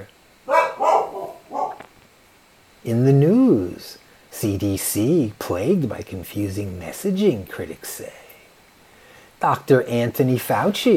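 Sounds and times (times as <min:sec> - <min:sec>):
dog barking: 0:00.5 - 0:01.9
speech: 0:02.8 - 0:08.2, 0:09.4 - 0:10.9.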